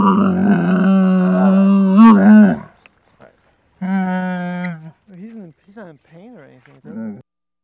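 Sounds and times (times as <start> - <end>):
camel bellowing, moaning and grumbling: 0.0 - 5.5, 6.7 - 7.2.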